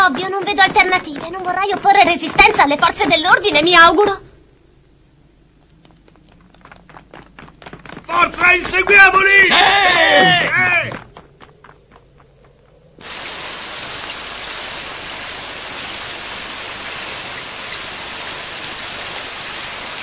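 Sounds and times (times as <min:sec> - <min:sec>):
soft rhythmic taps: 0:00.0 - 0:04.2, 0:05.6 - 0:08.9, 0:10.9 - 0:12.8
speech: 0:00.1 - 0:04.2, 0:08.1 - 0:11.0
steady hissing rain falling: 0:00.1 - 0:10.1, 0:10.7 - 0:20.0.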